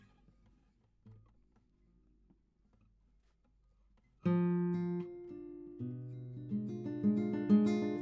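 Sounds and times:
guitar: 0:00.0 - 0:01.4, 0:04.0 - 0:08.0.

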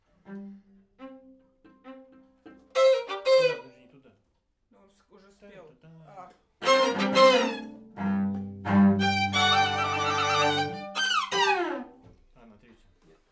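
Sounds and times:
main strings: 0:00.3 - 0:03.8, 0:06.6 - 0:12.1.

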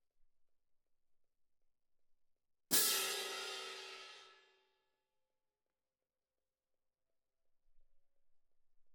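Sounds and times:
cymbal: 0:02.7 - 0:04.5.

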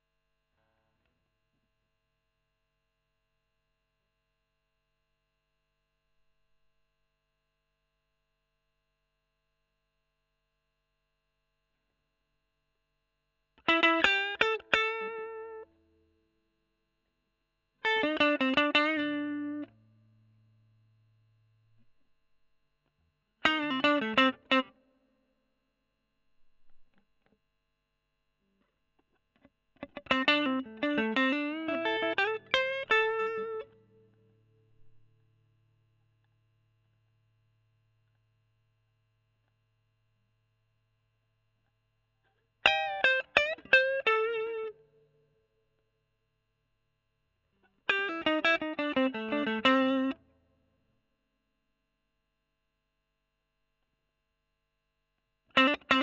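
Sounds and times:
overdriven electric guitar: 0:13.6 - 0:15.8, 0:17.8 - 0:20.0, 0:23.4 - 0:24.8, 0:29.1 - 0:35.1, 0:42.6 - 0:44.8, 0:47.6 - 0:50.2, 0:55.5 - 0:56.0.

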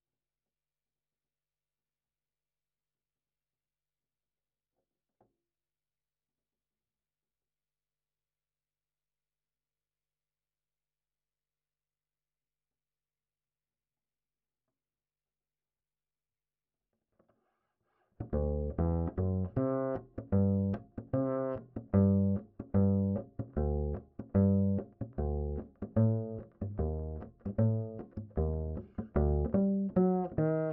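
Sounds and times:
ragtime bass line: 0:18.2 - 0:30.7.

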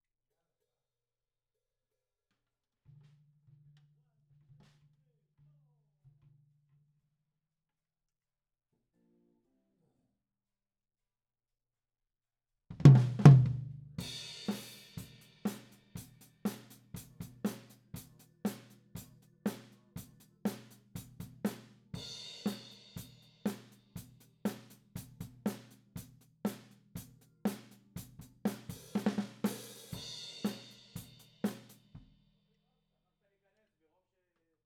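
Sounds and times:
tom drum: 0:12.7 - 0:32.2.

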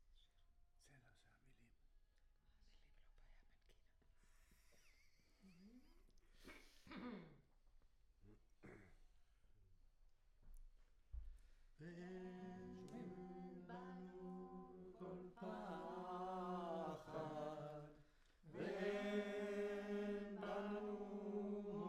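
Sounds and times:
choir singing close: 0:12.0 - 0:21.8.

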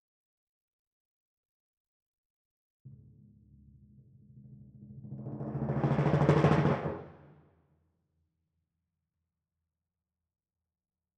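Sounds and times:
timpani: 0:02.9 - 0:07.5.

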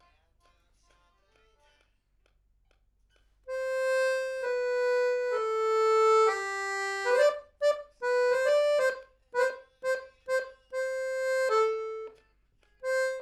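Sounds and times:
accordion: 0:03.5 - 0:12.2, 0:12.8 - 0:13.1.

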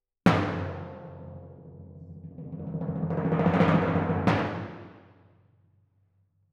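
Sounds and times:
two timpani tuned to F: 0:00.3 - 0:05.2.

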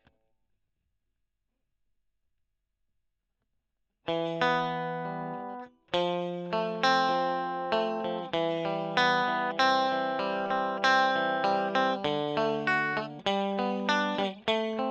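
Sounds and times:
electric guitar: 0:04.1 - 0:14.9.

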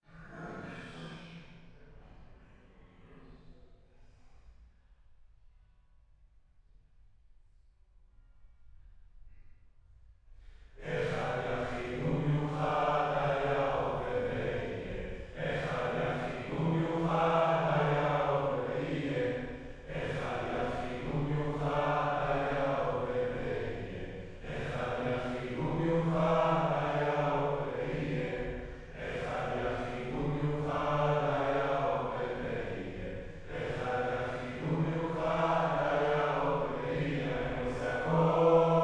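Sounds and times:
choir singing: 0:10.8 - 0:38.8.

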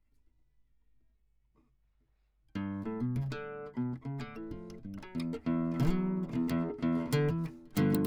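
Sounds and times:
classical guitar playing: 0:02.6 - 0:08.0.

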